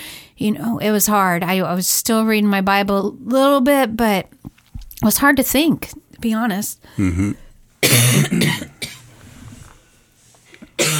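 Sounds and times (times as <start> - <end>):
speech: 0.4 - 4.4, 5.0 - 7.4
person coughing: 7.0 - 9.0, 10.8 - 10.9.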